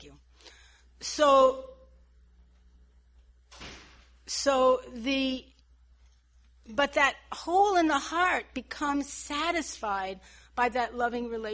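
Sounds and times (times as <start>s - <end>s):
speech: 1.0s - 1.7s, 4.3s - 5.5s, 6.7s - 11.5s
door shutting with a thud: 3.5s - 4.1s.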